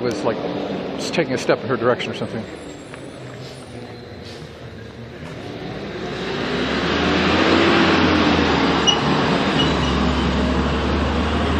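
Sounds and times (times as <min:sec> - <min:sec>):
speech: 0:00.0 - 0:02.7
garbage truck engine rumbling outside: 0:02.8 - 0:11.5.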